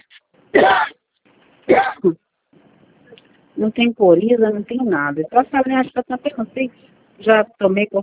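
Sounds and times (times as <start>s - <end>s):
person coughing: 0.6s - 1.0s, 1.7s - 2.2s
speech: 2.0s - 2.2s, 3.6s - 8.0s.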